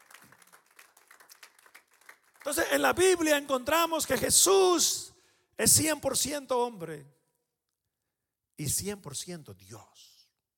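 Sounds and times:
crowd applauding: 0.0s - 2.9s
speech: 2.5s - 7.2s, 8.6s - 10.1s.

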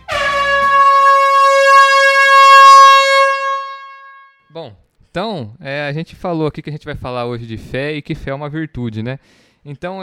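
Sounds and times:
air horn blast: 0.0s - 4.4s
speech: 4.6s - 10.0s.

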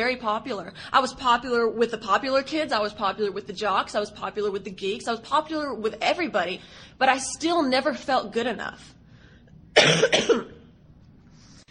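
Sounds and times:
speech: 0.0s - 9.0s, 9.8s - 10.5s
single harsh raspy cough: 9.8s - 10.7s.

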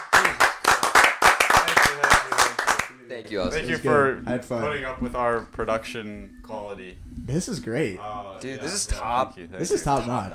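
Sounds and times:
person clapping hands: 0.0s - 2.9s
speech: 3.2s - 10.3s.

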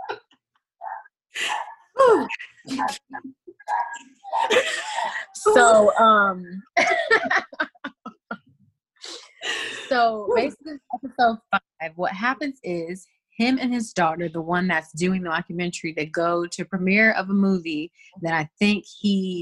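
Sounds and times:
three dogs barking in a house: 0.8s - 1.9s
speech: 2.7s - 3.1s, 5.6s - 7.3s, 10.0s - 19.3s
laughter: 4.3s - 5.8s, 6.8s - 8.4s.

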